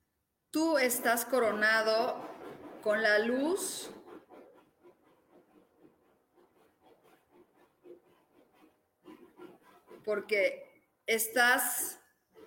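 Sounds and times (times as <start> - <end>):
speech: 0.6 - 4.0, 10.1 - 12.0
dogs scratching: 0.9 - 10.3.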